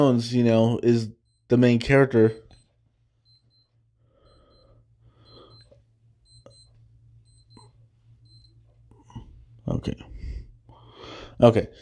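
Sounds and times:
speech: 0:00.0 - 0:02.4, 0:09.7 - 0:10.1, 0:11.4 - 0:11.7
low steady hum: 0:00.0 - 0:11.7
wristwatch alarm beeping: 0:01.1 - 0:08.6.

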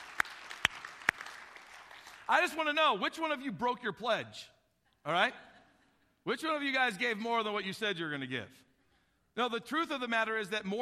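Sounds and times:
sharp claps: 0:00.0 - 0:02.5
church audience applauding pledge giving: 0:00.0 - 0:02.6
speech: 0:02.3 - 0:05.5, 0:06.2 - 0:08.6, 0:09.4 - 0:10.7.

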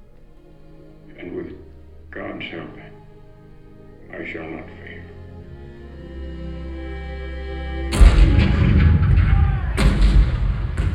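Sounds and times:
speech: 0:01.2 - 0:02.9, 0:04.1 - 0:05.2
deep rumbling roar: 0:07.9 - 0:10.9
heavy cannon blasts: 0:08.0 - 0:10.9.

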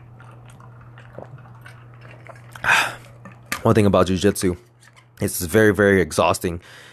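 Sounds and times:
person sipping water: 0:00.0 - 0:03.6
breathy gulp or exhale after swallowing: 0:02.6 - 0:03.2
speech: 0:03.6 - 0:06.9.

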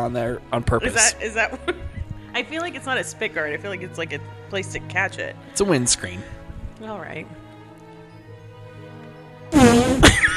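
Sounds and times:
speech: 0:00.0 - 0:07.4
laughter: 0:00.8 - 0:02.1, 0:10.0 - 0:10.3
buzzy mouth-made fart sound: 0:09.5 - 0:10.3.

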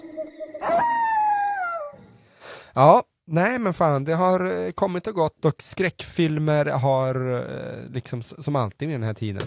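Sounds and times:
wolf howl: 0:00.0 - 0:02.2
speech: 0:02.8 - 0:09.4.

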